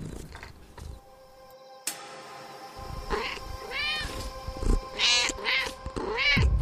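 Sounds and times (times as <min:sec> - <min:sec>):
cat meowing: 0:05.0 - 0:06.5.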